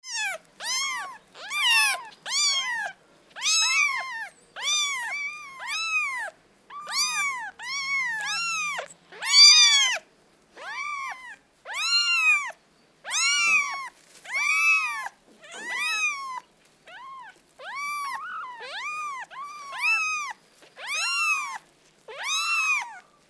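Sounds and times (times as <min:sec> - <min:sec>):
kittens: 0:00.0 - 0:23.2.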